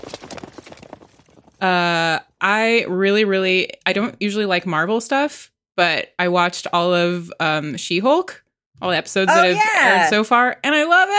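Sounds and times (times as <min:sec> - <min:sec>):
horse hooves clip-clopping: 0:00.0 - 0:01.6
speech: 0:01.6 - 0:11.1.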